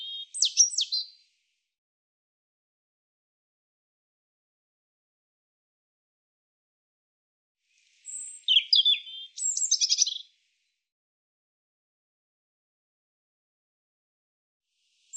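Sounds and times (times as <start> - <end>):
European robin song: 0.0 - 1.2, 7.8 - 10.3.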